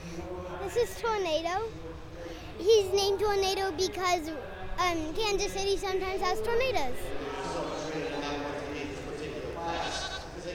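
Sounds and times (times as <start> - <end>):
outdoor farm noise: 0.0 - 10.5
speech: 0.7 - 1.9, 2.6 - 7.3
sheep bleating at a livestock show: 9.6 - 10.4.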